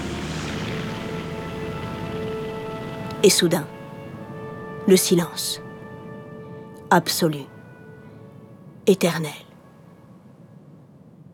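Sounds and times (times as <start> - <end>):
small propeller ski plane engine roaring with a faint whine: 0.0 - 8.9
speech: 3.2 - 3.8, 4.9 - 5.6, 6.9 - 7.5, 8.8 - 9.5.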